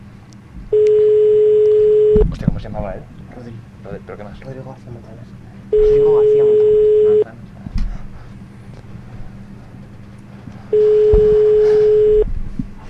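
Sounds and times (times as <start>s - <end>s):
telephone ringback tone on an outgoing call: 0.7s - 2.2s, 5.7s - 7.2s, 10.8s - 12.3s
people talking: 2.2s - 7.8s.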